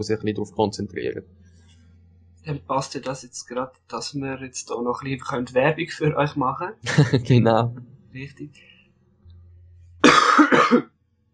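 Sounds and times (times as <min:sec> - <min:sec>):
speech: 0:00.0 - 0:01.6, 0:02.4 - 0:08.7
laughter: 0:05.8 - 0:07.8
harsh coughing from someone who slept with their head in the rain: 0:10.0 - 0:10.8.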